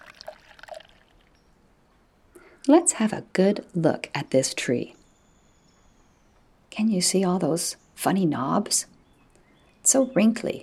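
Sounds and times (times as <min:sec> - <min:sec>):
water poured onto the ground at the base of a maple tree in a wood: 0:00.0 - 0:01.4
speech: 0:02.6 - 0:05.0, 0:06.8 - 0:09.0, 0:09.9 - 0:10.6.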